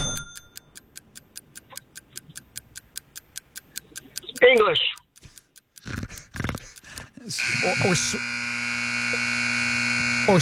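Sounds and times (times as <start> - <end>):
clock ticking: 0.0 - 10.3
speech: 4.4 - 5.0, 7.6 - 8.4.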